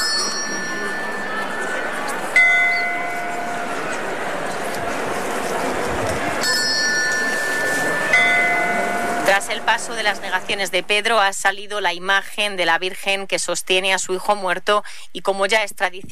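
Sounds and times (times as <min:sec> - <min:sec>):
procession bell ringing in the street: 0:00.0 - 0:11.8
crowd murmuring in the street: 0:00.0 - 0:11.9
speech: 0:09.6 - 0:16.0.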